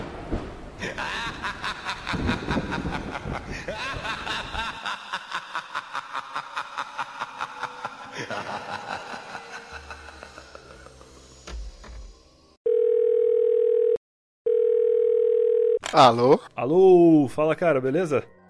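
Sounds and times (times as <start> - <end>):
chuckling: 0.8 - 11.4
telephone ringing tone of an outgoing call: 12.6 - 15.8
speech: 16.0 - 18.4.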